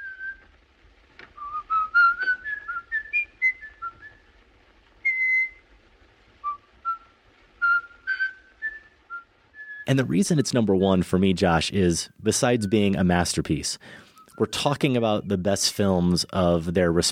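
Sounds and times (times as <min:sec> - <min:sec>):
man whistling a classical orchestral melody: 0:00.0 - 0:00.4, 0:01.4 - 0:04.3, 0:05.0 - 0:05.6, 0:06.4 - 0:09.9, 0:14.0 - 0:14.5
speech: 0:09.9 - 0:17.1.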